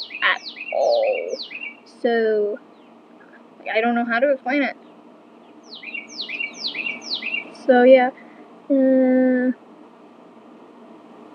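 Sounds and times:
bird chirping in a room: 0:00.0 - 0:02.0, 0:02.6 - 0:03.4, 0:04.8 - 0:07.7
soft low hum: 0:00.0 - 0:11.3
speech: 0:02.0 - 0:02.7, 0:03.6 - 0:04.8, 0:07.7 - 0:09.6.

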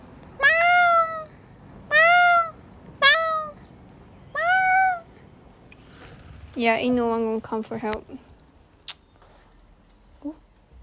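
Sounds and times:
person imitating drawn-out cat meows: 0:00.4 - 0:01.3, 0:01.9 - 0:03.5
speech: 0:06.6 - 0:08.3.

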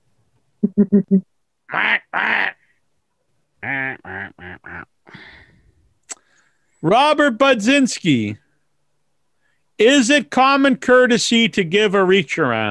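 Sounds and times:
speech: 0:00.7 - 0:02.5, 0:06.8 - 0:08.4, 0:09.8 - 0:12.6
duck quacking: 0:01.7 - 0:02.6, 0:03.6 - 0:04.9.

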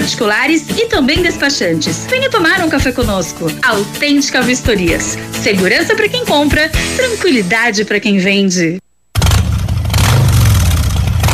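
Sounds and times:
speech: 0:00.1 - 0:08.9
Harley-Davidson motorcycle engine revving with deep throaty rumble: 0:09.2 - 0:11.3.

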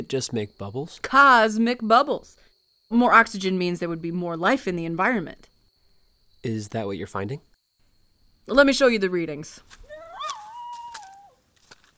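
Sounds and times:
speech: 0:00.0 - 0:05.5, 0:06.4 - 0:07.5, 0:08.5 - 0:09.8
dog whining or howling: 0:09.9 - 0:11.4.

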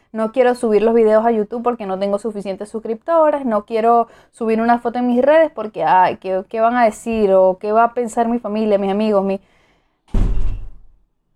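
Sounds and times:
speech: 0:00.1 - 0:10.2
heavy door slamming shut: 0:10.1 - 0:10.9.

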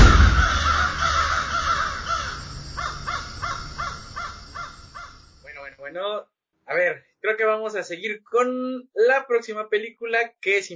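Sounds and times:
crows cawing: 0:00.0 - 0:05.4
speech: 0:06.0 - 0:10.7.

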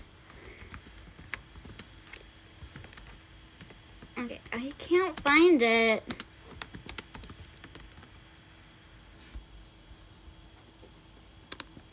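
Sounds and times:
typing on a computer keyboard: 0:00.4 - 0:05.4, 0:06.1 - 0:08.2, 0:11.5 - 0:11.9
speech: 0:04.2 - 0:06.2.

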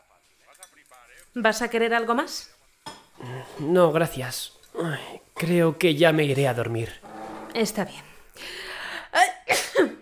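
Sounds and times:
speech: 0:01.3 - 0:02.6, 0:03.2 - 0:07.0, 0:07.6 - 0:08.6
drawn-out breathy inhale: 0:08.0 - 0:09.1.

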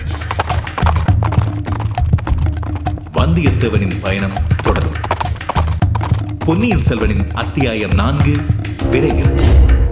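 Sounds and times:
horse hooves galloping: 0:00.0 - 0:09.3
speech: 0:03.4 - 0:05.2, 0:06.4 - 0:09.8.

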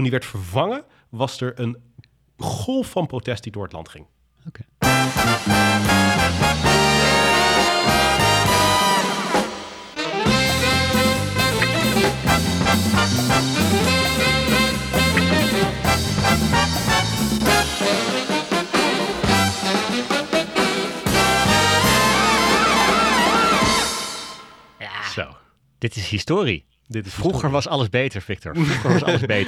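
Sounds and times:
speech: 0:00.0 - 0:06.8, 0:25.2 - 0:29.4
brassy orchestral sports TV programme opening theme tune: 0:04.8 - 0:24.8
laughter: 0:28.6 - 0:29.4.

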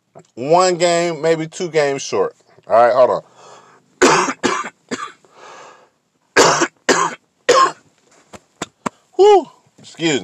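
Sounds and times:
speech: 0:00.2 - 0:03.3, 0:09.3 - 0:10.2
raspy breath: 0:03.3 - 0:03.9, 0:05.3 - 0:06.0
person in a loud coughing fit: 0:04.0 - 0:05.2, 0:06.4 - 0:07.8.

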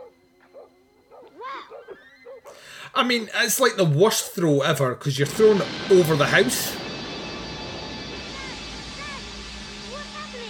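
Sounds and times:
dog barking and yelping: 0:00.0 - 0:02.6
speech: 0:02.9 - 0:06.8.

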